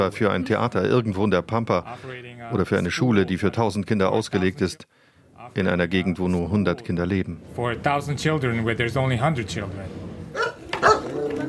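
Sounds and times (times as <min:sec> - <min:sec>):
speech: 0:00.0 - 0:10.1
dog yapping outside a yurt: 0:10.3 - 0:11.4.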